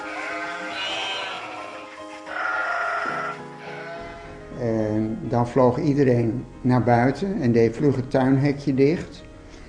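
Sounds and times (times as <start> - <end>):
flock of sheep bleating: 0.0 - 4.4
speech: 4.6 - 9.3.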